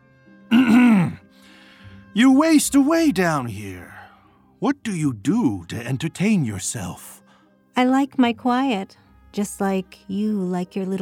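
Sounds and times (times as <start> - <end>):
person clearing throat: 0.5 - 1.2
speech: 2.2 - 3.9, 4.6 - 7.2, 7.8 - 11.0.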